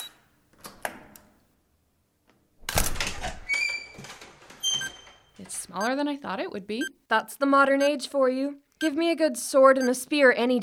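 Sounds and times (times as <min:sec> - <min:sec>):
door swinging open with rattling and scraping: 0:02.6 - 0:05.2
key code keypad beeps and clicks on a door: 0:04.6 - 0:05.0, 0:05.8 - 0:06.0
speech: 0:05.7 - 0:10.6.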